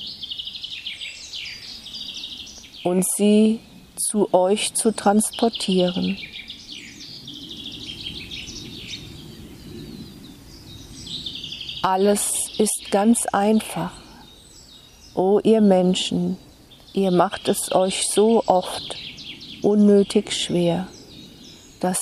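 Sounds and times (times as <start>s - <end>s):
birdsong chirps and trills: 0.0s - 21.9s
speech: 2.8s - 6.4s, 11.8s - 14.0s, 15.2s - 19.0s, 19.6s - 21.0s, 21.8s - 21.9s.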